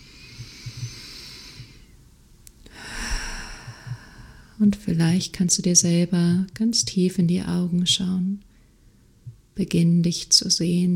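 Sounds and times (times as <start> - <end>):
deep slow breathing during a guided meditation: 0.0 - 2.0, 2.6 - 4.6
speech: 4.6 - 8.5, 9.6 - 10.9.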